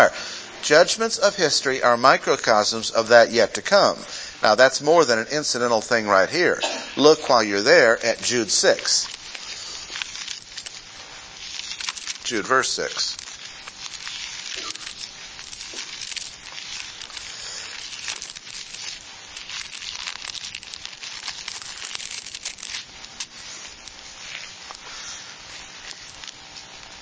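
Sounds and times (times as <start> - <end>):
speech: 0.0 - 9.2, 12.3 - 13.1
thin Bible paper pages being turned and shuffled: 7.3 - 27.0.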